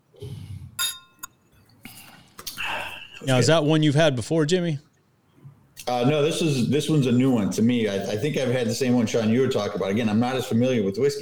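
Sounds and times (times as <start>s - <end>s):
glasses clinking in a whiskey toast: 0.8s - 1.7s
speech: 3.2s - 4.9s, 5.9s - 11.1s.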